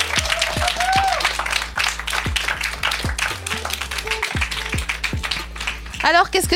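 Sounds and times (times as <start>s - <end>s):
cheers: 0.0s - 4.3s
crowd applause: 0.0s - 6.2s
speech: 6.1s - 6.5s.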